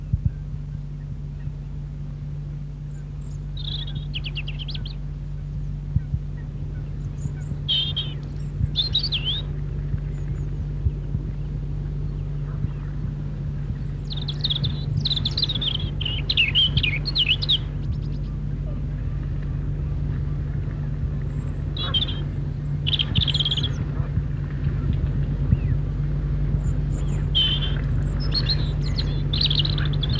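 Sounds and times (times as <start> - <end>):
steady low hum: 0.0 - 30.1
robin singing its melancholy winter song: 3.2 - 18.6, 19.8 - 24.1, 24.7 - 30.1.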